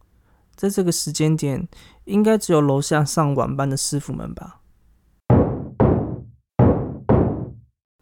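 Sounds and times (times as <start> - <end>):
speech: 0.6 - 4.6
solid knocks on a door: 5.3 - 7.7.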